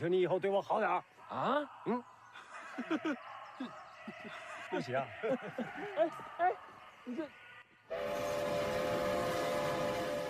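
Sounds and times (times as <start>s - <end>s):
speech: 0.0s - 2.1s, 2.8s - 8.6s
laughter: 1.3s - 6.6s
train rumbling and clattering along: 7.9s - 10.2s.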